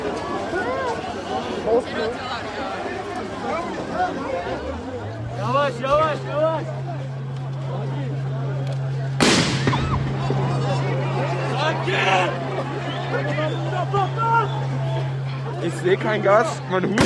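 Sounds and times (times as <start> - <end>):
crowd murmur with voices chattering in a park: 0.0 - 17.0
steady hum: 0.0 - 17.0
speech: 1.7 - 2.8, 5.4 - 6.8, 15.6 - 17.0
loud sharp explosion bursting overhead in a park: 9.2 - 10.3.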